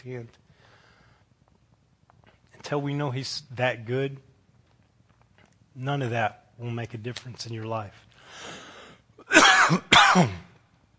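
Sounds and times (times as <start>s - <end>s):
speech: 0.0s - 0.5s, 2.7s - 4.3s, 5.8s - 8.6s, 9.3s - 10.5s
person clearing throat: 9.2s - 10.6s
person coughing: 9.2s - 10.6s.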